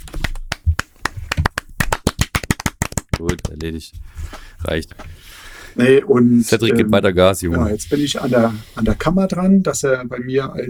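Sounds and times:
hands clapping in applause: 0:00.0 - 0:03.8
speech: 0:03.2 - 0:10.6.

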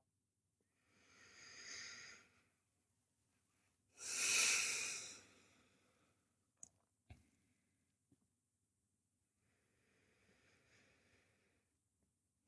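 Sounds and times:
slow deliberate breathing into the belly: 0:00.7 - 0:02.6, 0:04.0 - 0:06.3, 0:09.4 - 0:11.8.

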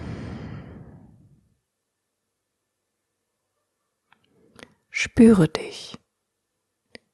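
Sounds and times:
person exhaling during meditation: 0:00.0 - 0:01.5
speech: 0:05.0 - 0:06.0.

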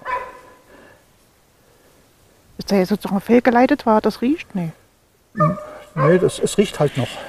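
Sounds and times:
dog barking: 0:00.0 - 0:00.6, 0:05.4 - 0:06.4
speech: 0:02.6 - 0:04.8, 0:05.4 - 0:07.2.

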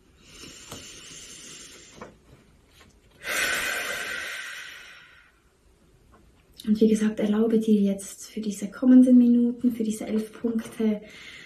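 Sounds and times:
person taking a deep breath in and out: 0:00.0 - 0:02.2, 0:03.1 - 0:05.6, 0:11.0 - 0:11.4
speech: 0:06.6 - 0:11.4.

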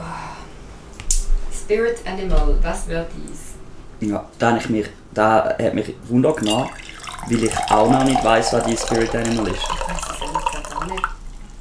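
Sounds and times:
speech: 0:01.7 - 0:10.0, 0:10.8 - 0:11.1
water pouring into a glass: 0:06.4 - 0:11.5.

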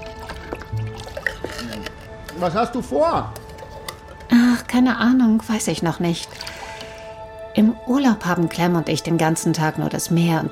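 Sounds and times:
paint thinned with turpentine poured into large plastic buckets: 0:00.0 - 0:02.8, 0:06.3 - 0:07.2
speech: 0:02.4 - 0:03.4, 0:04.3 - 0:06.4, 0:07.6 - 0:10.4.

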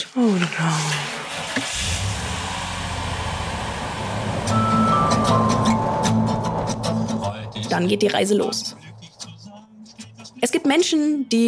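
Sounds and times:
speech: 0:00.1 - 0:01.1, 0:07.7 - 0:08.8, 0:10.6 - 0:11.4
car driven to the train station rumbling with road noise: 0:01.7 - 0:07.7
faint high tonal melody: 0:04.5 - 0:07.2.

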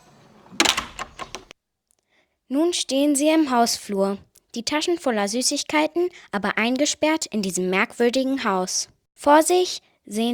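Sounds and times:
house door falling shut: 0:00.2 - 0:01.5
rattling knocks of the house door: 0:00.3 - 0:01.5
speech: 0:02.5 - 0:10.3.

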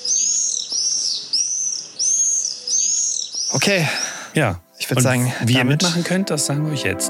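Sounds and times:
common swifts screaming: 0:00.0 - 0:04.3
speech: 0:03.5 - 0:07.0.

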